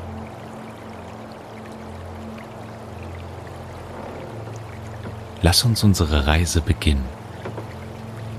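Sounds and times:
water sloshing against a small boat rocking in reeds: 0:02.2 - 0:05.4, 0:07.1 - 0:08.3
speech: 0:05.4 - 0:07.2.

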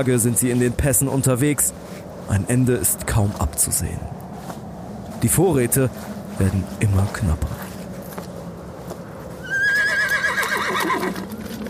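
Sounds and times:
speech: 0:00.0 - 0:04.3, 0:05.2 - 0:07.6
faint hoof clatter: 0:00.0 - 0:11.6
horse neighing loudly with quavering pitch: 0:09.4 - 0:11.3.

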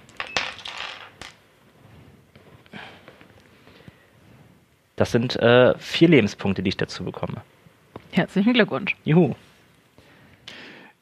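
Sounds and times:
eight-sided die rolled during a tabletop role-playing game: 0:00.1 - 0:01.4
speech: 0:05.0 - 0:09.5.

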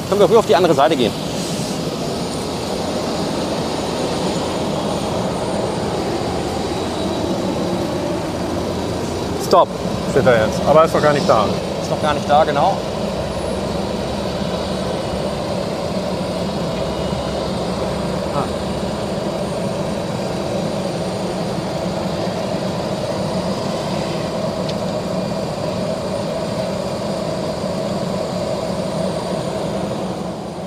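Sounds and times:
airplane taxiing with engines running after landing: 0:00.0 - 0:30.6
speech: 0:00.1 - 0:01.3, 0:09.5 - 0:12.9.

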